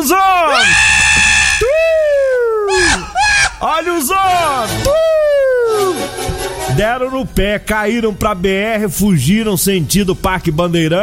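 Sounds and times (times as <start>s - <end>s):
speech: 0.0s - 0.9s, 3.6s - 5.1s, 6.8s - 11.0s
man shouting during a recorded police chase: 0.0s - 6.1s.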